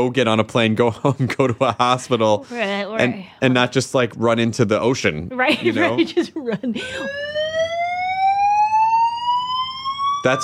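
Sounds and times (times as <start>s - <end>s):
speech: 0.0s - 7.4s, 10.2s - 10.4s
electronic alarm going off: 6.8s - 10.4s.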